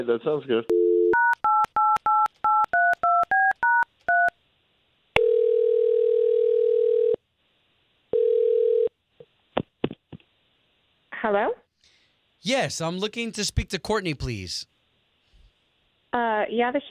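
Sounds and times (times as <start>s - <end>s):
speech: 0.0s - 0.8s, 11.3s - 11.6s, 12.4s - 14.7s, 16.2s - 16.8s
telephone ringing tones: 0.7s - 4.3s, 5.2s - 7.2s, 8.2s - 8.9s.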